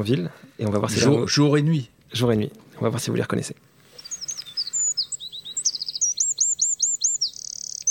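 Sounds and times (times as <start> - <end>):
speech: 0.0 - 3.7
Eurasian wren singing: 3.9 - 7.8.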